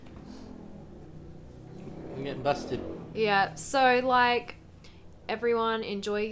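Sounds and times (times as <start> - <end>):
motorbike speeding down the street revving: 0.0 - 4.8
speech: 2.2 - 4.6, 5.3 - 6.2.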